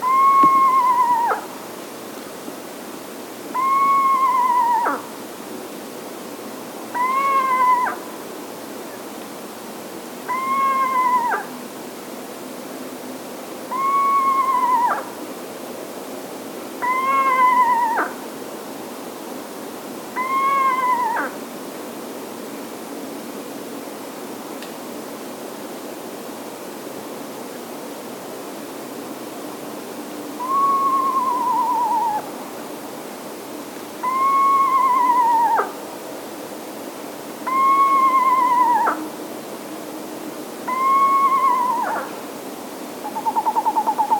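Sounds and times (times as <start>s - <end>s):
Eastern Screech Owl Megascops asio calling: 0.0s - 1.6s, 3.5s - 5.1s, 6.9s - 8.1s, 10.2s - 11.6s, 13.7s - 15.2s, 16.8s - 18.2s, 20.1s - 21.4s, 30.4s - 32.4s, 34.0s - 35.8s, 37.4s - 39.2s, 40.6s - 42.2s, 43.0s - 44.1s.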